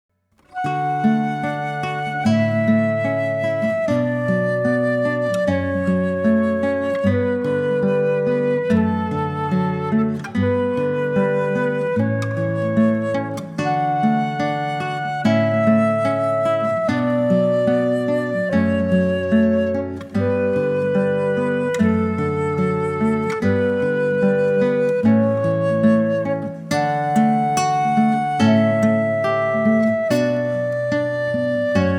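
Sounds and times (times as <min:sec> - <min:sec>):
flute and guitar classical piece: 0:00.4 - 0:31.9.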